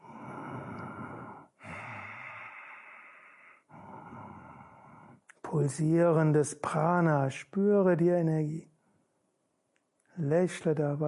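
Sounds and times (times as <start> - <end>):
slow gentle ujjayi breathing with soft oceanic rasp: 0.0 - 5.4
speech: 5.5 - 8.7, 10.2 - 11.0.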